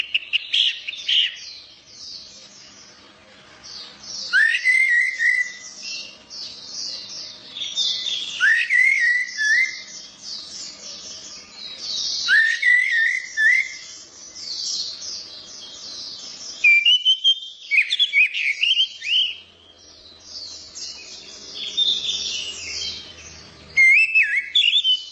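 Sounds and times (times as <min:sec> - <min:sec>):
orange-headed thrush singing: 0:00.0 - 0:01.6, 0:04.2 - 0:10.8, 0:11.8 - 0:15.0, 0:16.5 - 0:19.5, 0:20.4 - 0:25.1.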